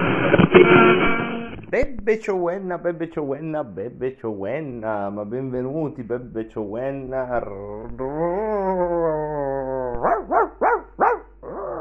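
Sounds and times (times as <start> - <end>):
speech: 0.6 - 9.2
dogs barking: 10.0 - 11.6
dog howling whine: 11.4 - 11.7.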